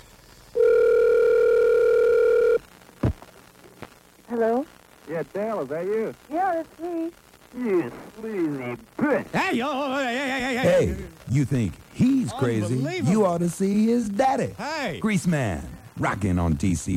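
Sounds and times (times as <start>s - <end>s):
telephone ring tone heard down the line during a live radio broadcast: 0.6s - 2.6s
speech: 4.4s - 16.9s.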